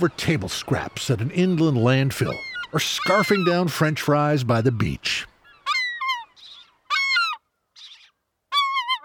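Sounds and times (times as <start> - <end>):
speech: 0.0 - 5.3
American herring gull calls: 2.2 - 3.7, 5.4 - 9.0.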